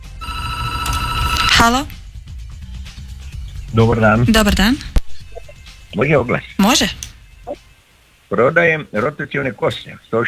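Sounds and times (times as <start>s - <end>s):
telephone ringing with a bright electronic tone: 0.0s - 2.1s
speech: 1.6s - 2.0s, 3.7s - 4.9s, 5.9s - 7.0s, 8.3s - 10.2s.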